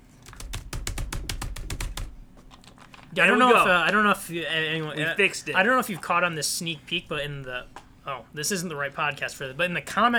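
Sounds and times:
typing on a computer keyboard: 0.0s - 3.1s
speech: 3.1s - 10.1s.

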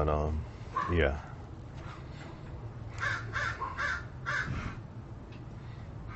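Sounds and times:
speech: 0.0s - 1.3s
steady low hum: 0.0s - 6.1s
crows cawing: 0.8s - 1.0s, 2.9s - 4.8s.

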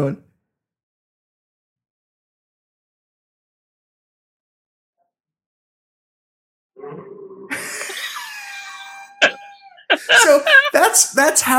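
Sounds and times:
speech: 0.0s - 0.3s, 9.9s - 11.5s
laughter: 7.5s - 11.5s
low rough cough: 9.1s - 11.0s.

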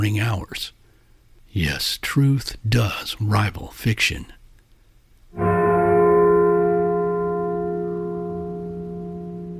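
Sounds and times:
speech: 0.0s - 0.8s, 1.5s - 4.4s
deep heavy castle bell tolling: 5.4s - 9.5s.

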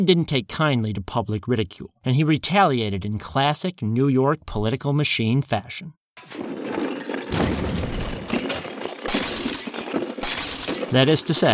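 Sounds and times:
speech: 0.0s - 6.6s, 10.9s - 11.5s
shattering debris: 6.2s - 11.5s
sledgehammers smashing sculptures in a studio: 6.2s - 11.5s.

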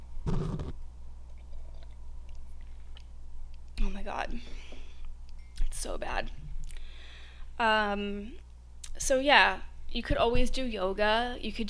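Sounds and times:
person sipping a drink: 1.3s - 3.1s
speech: 4.1s - 4.7s, 5.8s - 6.4s, 7.6s - 8.4s, 9.0s - 11.6s.

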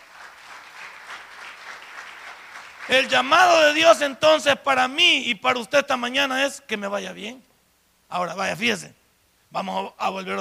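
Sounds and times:
audience applauding: 0.0s - 3.4s
speech: 2.9s - 7.5s, 8.1s - 10.3s.

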